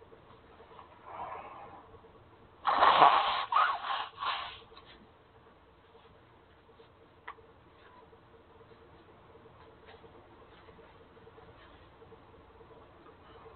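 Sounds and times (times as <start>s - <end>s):
faint hum: 0.0s - 13.5s
person blowing nose: 2.6s - 4.6s.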